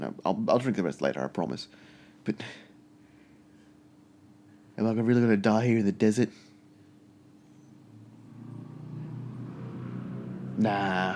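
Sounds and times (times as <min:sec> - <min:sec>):
speech: 0:00.0 - 0:02.7, 0:04.8 - 0:06.4, 0:10.6 - 0:11.1
low engine rumble of road traffic outside: 0:07.9 - 0:11.1.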